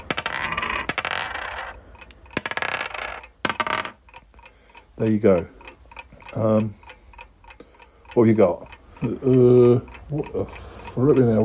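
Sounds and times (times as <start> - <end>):
four dice rolling on a hard surface: 0.0 - 1.8, 2.4 - 4.0
speech: 5.0 - 5.6, 6.3 - 6.8, 8.2 - 11.4.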